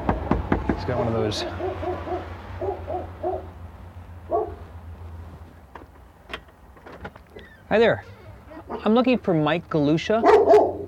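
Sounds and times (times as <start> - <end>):
speech: 0.8 - 1.8, 7.7 - 10.6
dog barking behind a house door: 1.4 - 3.5, 4.3 - 4.6, 10.2 - 10.8
sharp clicks and knocks: 5.7 - 7.3.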